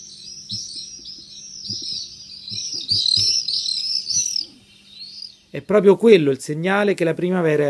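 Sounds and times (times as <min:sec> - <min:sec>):
common swifts screeching flying among buildings in a harbour area: 0:00.0 - 0:05.7
speech: 0:05.6 - 0:07.6.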